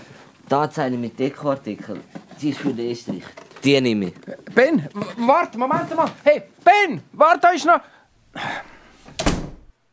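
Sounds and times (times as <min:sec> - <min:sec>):
speech: 0:00.5 - 0:08.7
door pushed shut with a scraping swing and solid thud: 0:08.6 - 0:09.8.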